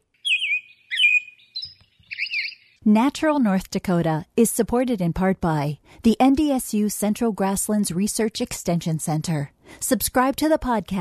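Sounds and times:
American robin song of warbled, slurred whistled phrases: 0:00.2 - 0:02.8
speech: 0:02.9 - 0:10.9.

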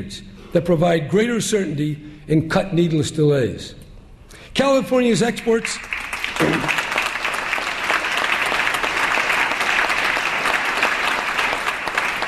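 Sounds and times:
speech: 0:00.0 - 0:03.8, 0:04.5 - 0:06.8
applause from a large audience: 0:05.8 - 0:12.2.

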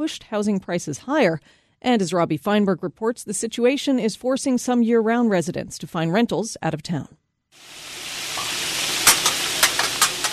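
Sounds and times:
speech: 0:00.0 - 0:07.8
crab cakes and sausage sizzling on a hot grill: 0:07.6 - 0:10.3.

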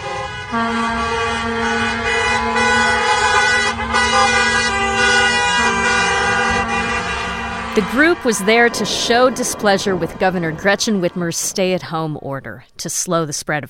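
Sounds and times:
car and truck horns honking in a street protest: 0:00.0 - 0:11.9
rumble of street traffic: 0:00.0 - 0:12.8
speech: 0:00.5 - 0:02.0, 0:07.8 - 0:13.6.

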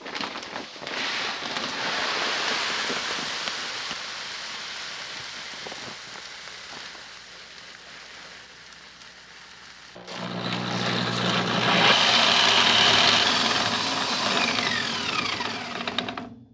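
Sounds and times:
grain mill crushing malt: 0:00.0 - 0:16.4
grain mill motor humming: 0:09.5 - 0:16.4.

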